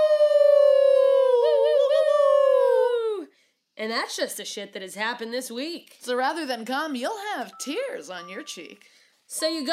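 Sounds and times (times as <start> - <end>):
person howling imitating an animal: 0.0 - 3.3
speech: 3.8 - 9.7.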